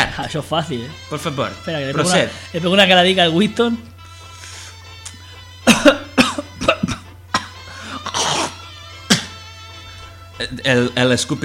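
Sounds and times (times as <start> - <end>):
speech: 0.2 - 3.9, 10.4 - 11.4
person in a heavy coughing fit: 5.6 - 9.4.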